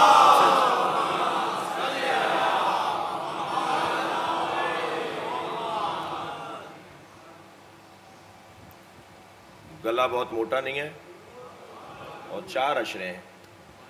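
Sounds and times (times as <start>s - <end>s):
large audience reciting salawat in unison: 0.0s - 7.0s, 11.6s - 12.4s
speech: 10.0s - 11.0s, 12.4s - 13.3s.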